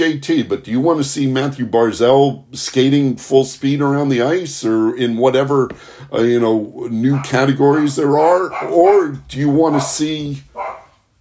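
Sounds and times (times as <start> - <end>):
speech: 0.0 - 10.7
dog barking: 7.0 - 7.4, 8.5 - 8.9, 9.6 - 11.0.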